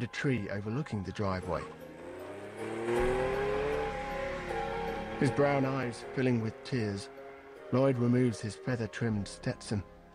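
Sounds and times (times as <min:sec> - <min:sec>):
speech: 0:00.0 - 0:01.8, 0:05.2 - 0:10.0
car engine pulling away in reverse: 0:01.4 - 0:07.6.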